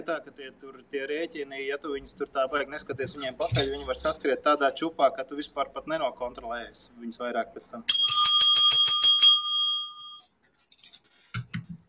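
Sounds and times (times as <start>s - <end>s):
speech: 0.0s - 8.1s
small hotel desk bell tapped: 7.9s - 10.2s.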